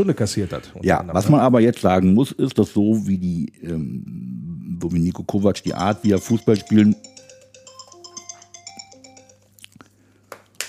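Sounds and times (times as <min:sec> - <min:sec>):
speech: 0:00.0 - 0:07.2
mobile phone ringtone with stepped beeping tones: 0:05.6 - 0:09.8.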